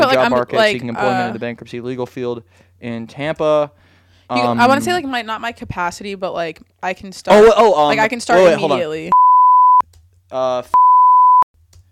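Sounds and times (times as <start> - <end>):
speech: 0.1 - 9.2, 10.3 - 10.8
loud steady censor bleeps: 9.1 - 9.8, 10.8 - 11.4.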